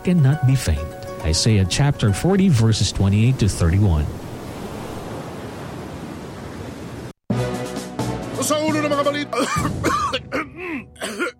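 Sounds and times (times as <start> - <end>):
speech: 0.0 - 4.2, 8.4 - 10.9
dry raspy coughing: 9.3 - 11.3.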